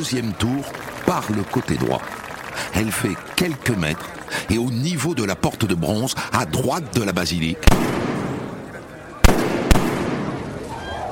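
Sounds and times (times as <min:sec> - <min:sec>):
speech: 0:00.0 - 0:08.0
crowd voices in a square beside a basilica: 0:00.0 - 0:11.0
gunshots fired at a crowd in a square beside a basilica: 0:07.6 - 0:10.7.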